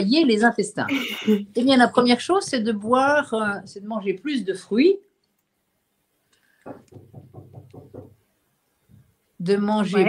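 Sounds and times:
speech: 0:00.0 - 0:05.1, 0:06.6 - 0:07.2, 0:09.4 - 0:10.0
laughter: 0:00.9 - 0:01.4
knocking on a door: 0:06.7 - 0:08.3.

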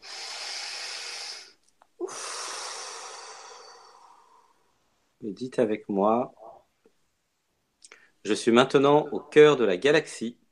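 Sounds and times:
deep breath taken during a guided meditation: 0:00.0 - 0:04.8
speech: 0:05.2 - 0:06.4, 0:08.2 - 0:10.4.

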